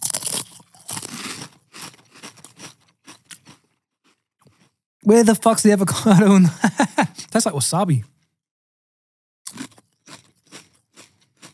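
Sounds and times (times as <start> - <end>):
crunching Pringles potato chips: 0.0 - 4.8, 9.5 - 11.5
speech: 5.1 - 8.1
laughter: 5.9 - 7.3.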